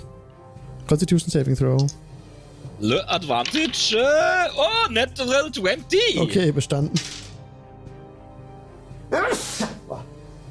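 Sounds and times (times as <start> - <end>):
speech: 0.9 - 2.2, 2.8 - 7.2
sneeze: 9.1 - 10.0.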